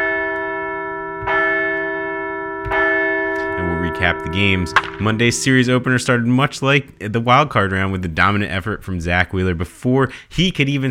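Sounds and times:
large bell ringing: 0.0 - 7.9
speech: 4.0 - 10.9.

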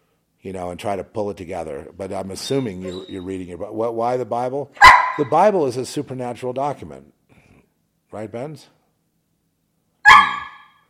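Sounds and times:
speech: 0.4 - 7.2, 8.1 - 8.8
dog barking: 4.8 - 5.3, 10.0 - 10.8.

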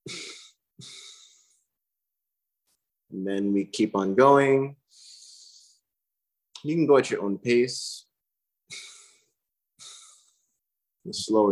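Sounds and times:
two-part exhale in a breathing exercise: 0.0 - 1.7, 4.9 - 5.9, 8.7 - 10.6
speech: 3.1 - 4.8, 6.6 - 8.0, 11.1 - 11.5.

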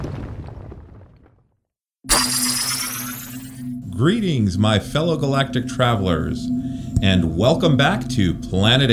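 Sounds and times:
big roaring explosion sound effect: 2.1 - 3.6
bright steady tonal sound: 2.1 - 3.8
speech: 4.0 - 8.9.

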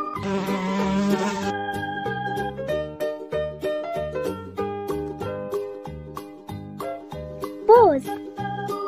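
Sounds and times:
bouncy upbeat children's tune: 0.0 - 8.8
bee buzzing: 0.2 - 1.6.

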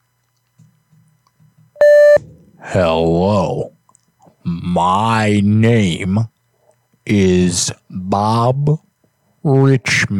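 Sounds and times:
answering machine beep: 1.8 - 2.2
speech: 2.6 - 3.7, 4.7 - 6.3, 7.1 - 10.1.

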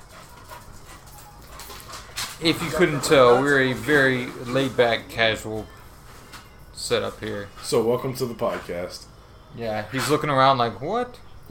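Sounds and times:
dog panting while attacking an older man: 0.0 - 4.7
dog whimpering: 2.4 - 4.2
speech: 2.4 - 5.8, 6.9 - 11.3
laughter: 2.5 - 3.7.

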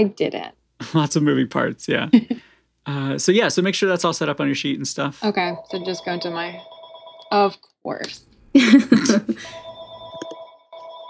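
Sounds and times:
speech: 0.0 - 6.7, 7.3 - 9.6
steady electronic landline telephone ring: 5.3 - 7.5, 9.4 - 11.0
laughter: 8.6 - 9.6.

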